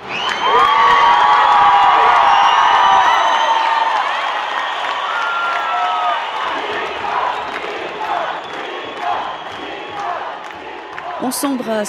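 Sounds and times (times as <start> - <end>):
shrill whoops and shouts from a crowd: 0.0 - 6.4
huge outdoor crowd roaring and cheering in a square: 0.0 - 11.8
speech: 11.3 - 11.8.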